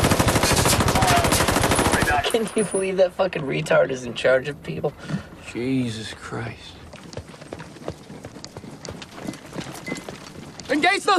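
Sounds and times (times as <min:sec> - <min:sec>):
machine gun fire in combat with tracer rounds aimed at scraps of metal: 0:00.0 - 0:02.5
speech: 0:02.4 - 0:06.8, 0:10.8 - 0:11.1.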